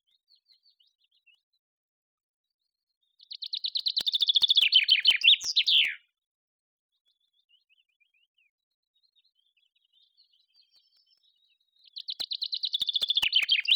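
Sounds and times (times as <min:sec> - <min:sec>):
common chaffinch Fringilla coelebs singing: 0:03.3 - 0:06.0, 0:12.0 - 0:13.7.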